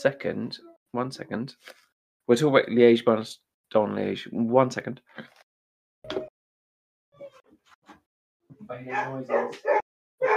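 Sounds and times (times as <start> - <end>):
speech: 0.0 - 5.4, 8.7 - 10.3
person imitating a dog barking excitedly: 8.9 - 10.3.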